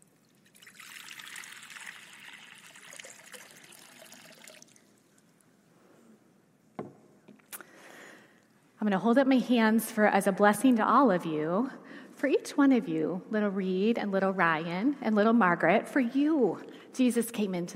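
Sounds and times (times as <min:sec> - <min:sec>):
water poured and trickling in a baptismal font: 0:00.0 - 0:05.4
speech: 0:08.8 - 0:17.7.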